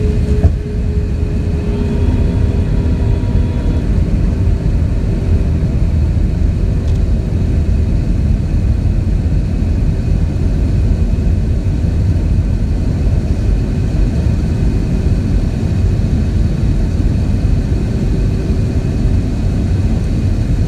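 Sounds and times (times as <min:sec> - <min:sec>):
thin whining tones: 0:00.0 - 0:06.0
airplane landing with engine and airflow roar: 0:00.0 - 0:20.6.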